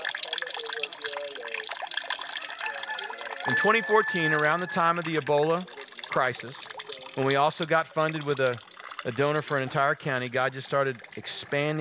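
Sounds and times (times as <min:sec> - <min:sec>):
water trickling through gravity-fed water filter: 0:00.0 - 0:11.8
speech: 0:03.4 - 0:06.6, 0:07.2 - 0:11.8.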